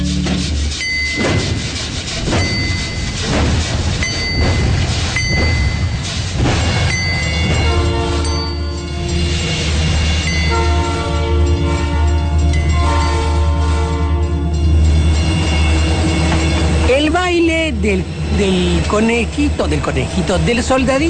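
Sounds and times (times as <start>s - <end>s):
steam train chugging: 0.0s - 21.0s
steam train multi-tone whistle: 10.5s - 14.5s
speech: 18.9s - 21.0s.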